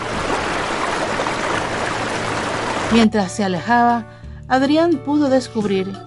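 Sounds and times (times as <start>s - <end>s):
water rushing in a flood: 0.0s - 3.3s
speech: 2.9s - 6.0s.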